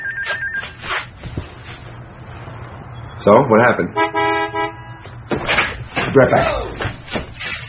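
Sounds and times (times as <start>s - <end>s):
phone ringing with a steady electronic tone: 0.0s - 0.7s
speech: 3.2s - 4.6s, 6.1s - 6.7s.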